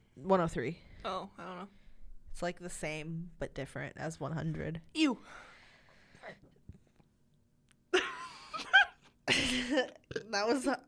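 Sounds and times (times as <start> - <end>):
speech: 0.2 - 1.8, 2.4 - 5.5, 9.5 - 10.8
two people burping at the same time: 9.3 - 10.7.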